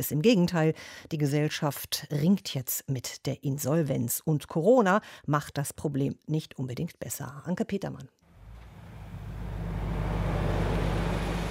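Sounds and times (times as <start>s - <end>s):
speech: 0.0s - 8.2s
broadband road noise: 8.3s - 11.4s
bus engine rumbling while driving along a road: 8.3s - 11.4s.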